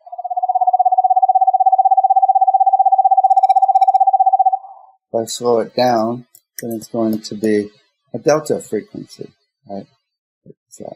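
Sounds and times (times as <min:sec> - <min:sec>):
screech owl long steady trill: 0:00.0 - 0:04.9
speech: 0:05.2 - 0:10.0, 0:10.7 - 0:10.9.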